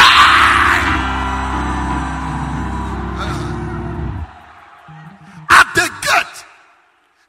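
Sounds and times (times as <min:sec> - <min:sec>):
audience shouting and screaming in response to a preacher: 0:00.0 - 0:06.2.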